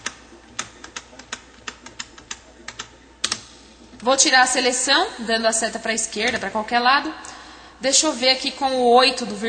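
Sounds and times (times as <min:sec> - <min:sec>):
computer keyboard key presses applying font formatting: 0:00.0 - 0:03.5
speech: 0:04.0 - 0:09.4.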